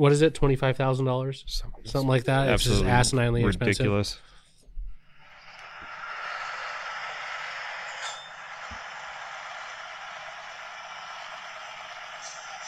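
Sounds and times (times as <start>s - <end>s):
speech: 0.0s - 4.3s
V8 engine running with an injection pump: 5.4s - 12.6s.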